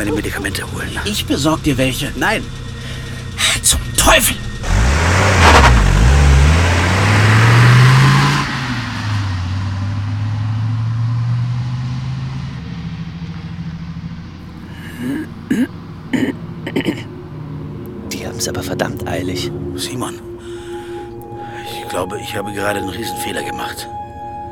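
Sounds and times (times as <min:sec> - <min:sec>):
speech: 0:00.0 - 0:02.7, 0:03.6 - 0:04.4, 0:18.4 - 0:20.3, 0:21.9 - 0:24.0
car engine revving: 0:00.0 - 0:21.4
car driving off: 0:00.0 - 0:24.4
short throaty vocal sounds: 0:02.8 - 0:05.5, 0:14.7 - 0:17.1.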